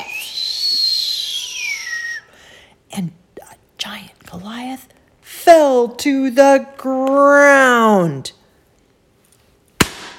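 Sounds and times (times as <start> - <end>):
whistling of a stone flying from sling: 0.0 - 2.3
speech: 3.0 - 3.2, 3.8 - 8.4.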